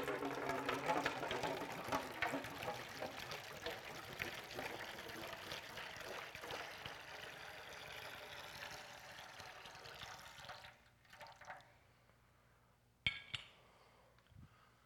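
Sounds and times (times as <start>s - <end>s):
water pouring in a splashing stream: 0.0s - 11.7s.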